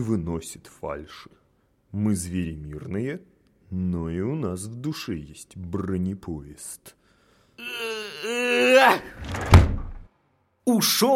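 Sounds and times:
speech: 0:00.0 - 0:07.0, 0:07.6 - 0:09.8, 0:10.7 - 0:11.1
door slamming: 0:08.9 - 0:10.1.

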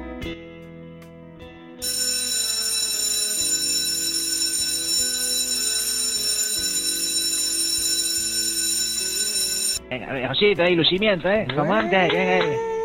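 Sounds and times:
school bell or siren ringing for the start of class: 0:01.8 - 0:09.8
speech: 0:10.6 - 0:12.7.

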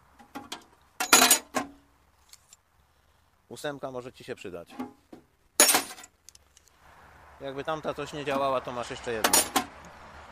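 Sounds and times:
standard metal wrenches tossed in together: 0:00.4 - 0:02.6, 0:05.6 - 0:06.1, 0:09.2 - 0:09.7
speech: 0:03.5 - 0:05.0, 0:07.4 - 0:09.7.

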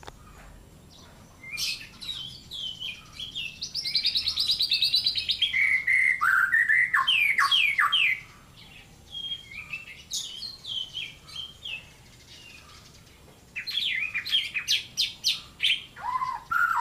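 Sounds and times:
white-rumped shama song for training cage birds: 0:01.1 - 0:13.0, 0:13.6 - 0:16.7.

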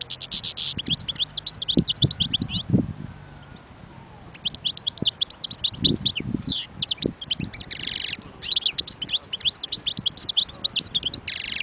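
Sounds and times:
wild European goldfinch singing: 0:00.0 - 0:02.7, 0:04.3 - 0:11.6.

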